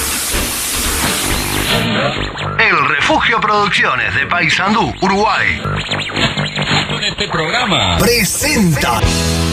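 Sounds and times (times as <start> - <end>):
coal-fired steam train hissing as it starts to move: 0.0 - 1.7
speech: 2.1 - 6.3, 7.0 - 9.4.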